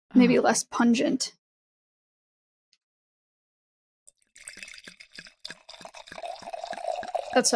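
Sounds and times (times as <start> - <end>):
speech: 0.2 - 1.4, 7.4 - 7.5
wine pouring into a glass: 4.3 - 7.5.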